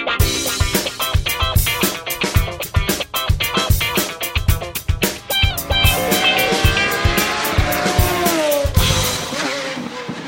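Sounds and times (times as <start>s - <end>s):
sharp rhythmic thumps: 0.2s - 10.2s
Pagani Huayra supercar engine howling: 5.1s - 10.2s.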